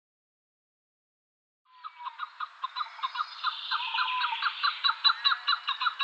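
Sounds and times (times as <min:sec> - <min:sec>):
chukar partridge Alectoris chukar clucking calls: 0:01.7 - 0:06.0.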